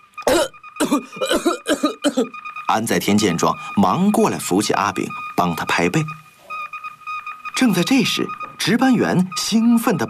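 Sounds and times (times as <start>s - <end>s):
man coughing violently after choking on a sip of tea: 0.3s - 2.3s
speech: 0.9s - 6.2s, 7.6s - 10.0s.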